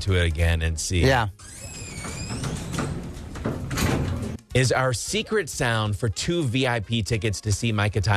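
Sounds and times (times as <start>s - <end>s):
speech: 0.0s - 1.8s, 4.6s - 8.1s
elevator door sliding along its track: 1.4s - 4.4s.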